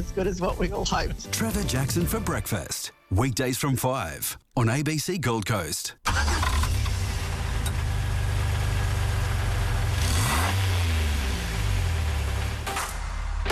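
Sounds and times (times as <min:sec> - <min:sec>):
speech: 0:00.0 - 0:06.3
car engine idling and revving: 0:06.1 - 0:13.4.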